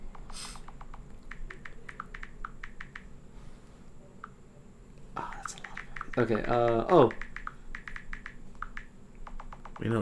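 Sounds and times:
typing on a computer keyboard: 0.1s - 3.1s, 5.3s - 9.9s
speech: 6.2s - 7.3s.

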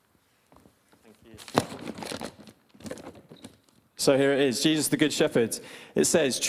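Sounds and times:
paper being handled and rustled: 1.0s - 3.8s
speech: 4.0s - 6.4s.

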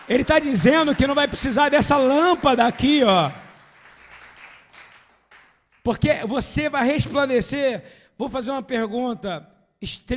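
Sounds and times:
audience applauding: 0.0s - 6.0s
speech: 0.1s - 3.4s, 5.8s - 10.1s.

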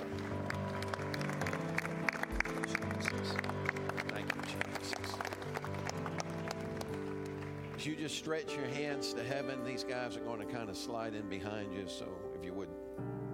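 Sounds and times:
crowd clapping in praise: 0.0s - 8.1s
sustained keyboard or organ chords: 0.0s - 13.3s
speech: 7.8s - 12.7s.

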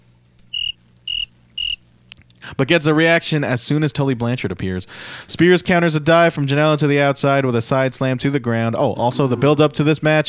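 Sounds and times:
faint low hum: 0.0s - 2.5s
cricket chirps: 0.5s - 1.9s
speech: 2.5s - 10.2s.

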